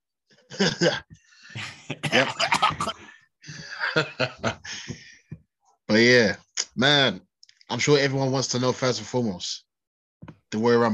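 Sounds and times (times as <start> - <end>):
laughter: 0.5 - 5.0
speech: 0.6 - 3.0, 4.0 - 5.0, 5.9 - 9.6, 10.5 - 10.9
stuffed-up person coughing: 1.9 - 3.1.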